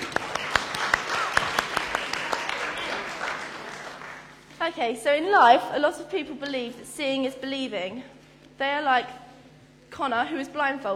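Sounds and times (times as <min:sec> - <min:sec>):
audience applauding: 0:00.0 - 0:04.4
speech: 0:04.7 - 0:09.2, 0:09.9 - 0:10.9.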